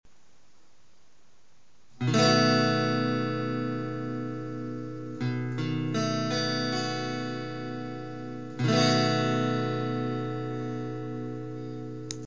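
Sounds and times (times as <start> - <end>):
B7 chord on an electric guitar: 2.0 - 12.2.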